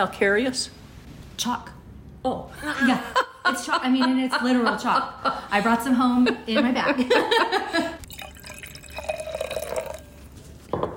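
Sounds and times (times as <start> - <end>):
speech: 0.0 - 0.8, 1.4 - 8.0
Brut sparkling wine poured into a glass: 8.0 - 10.4
glass clink: 8.1 - 10.2.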